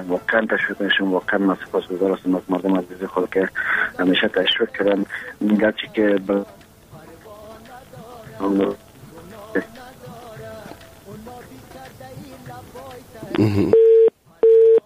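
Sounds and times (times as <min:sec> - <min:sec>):
speech: 0:00.0 - 0:06.6, 0:08.4 - 0:08.8, 0:09.5 - 0:09.8, 0:13.4 - 0:13.9
telephone busy signal after a dropped call: 0:13.7 - 0:14.8.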